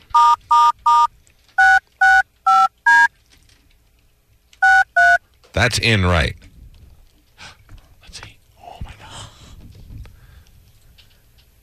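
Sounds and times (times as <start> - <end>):
telephone keypad dialing tones: 0.0 - 3.1, 4.6 - 5.2
speech: 5.6 - 6.4.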